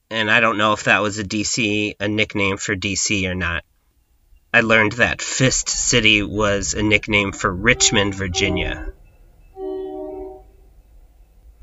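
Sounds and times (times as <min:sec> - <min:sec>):
speech: 0:00.2 - 0:03.7, 0:04.5 - 0:09.0
low rumble of passing rail traffic heard from a house: 0:03.2 - 0:11.6
train horn blast heard from a house: 0:04.6 - 0:05.2, 0:07.4 - 0:10.8.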